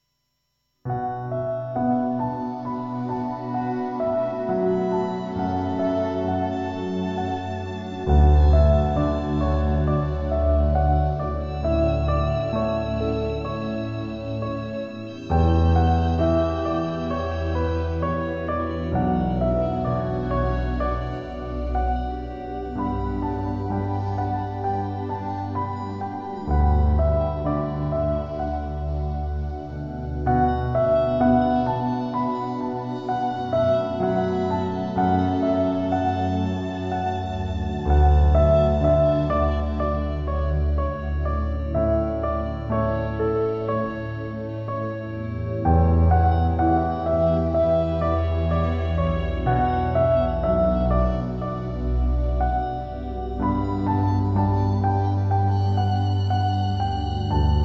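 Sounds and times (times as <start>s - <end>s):
soft piano music: 0.9s - 57.6s.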